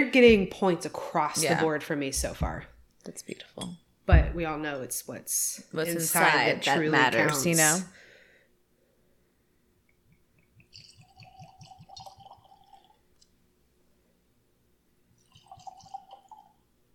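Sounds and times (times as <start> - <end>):
speech: 0.0 - 8.0
whiskey glugging from a bottle into a glass: 10.8 - 13.0, 15.2 - 16.6.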